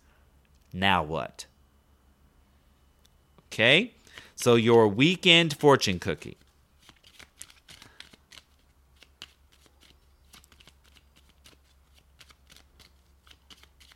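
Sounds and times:
speech: 0.7 - 1.5, 3.5 - 6.4
deck of cards shuffling: 4.2 - 13.9.

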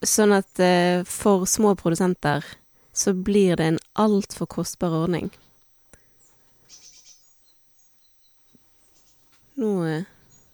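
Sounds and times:
speech: 0.0 - 5.4, 9.6 - 10.2
bird giving bright tweets: 5.3 - 10.5.

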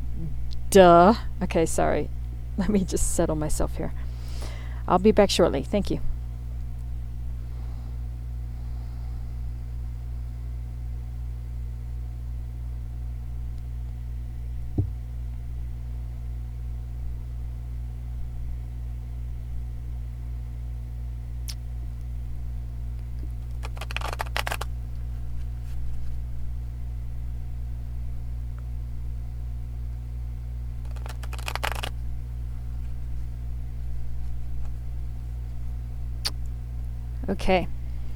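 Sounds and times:
steady low electrical hum: 0.0 - 38.1
speech: 0.2 - 4.0, 4.9 - 6.1, 37.4 - 37.8
deck of guidance cards being shuffled: 23.4 - 24.7, 30.8 - 32.0.

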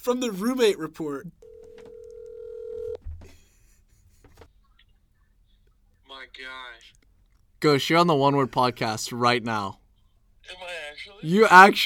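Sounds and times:
speech: 0.0 - 1.5, 6.2 - 7.0, 7.6 - 9.8, 10.5 - 11.8
click and thump as the phone line picks up: 1.4 - 3.0
telephone call tone: 1.4 - 3.0.

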